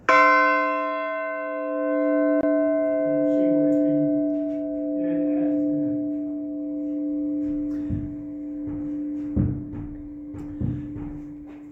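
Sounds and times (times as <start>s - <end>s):
bells ringing: 0.0s - 11.7s.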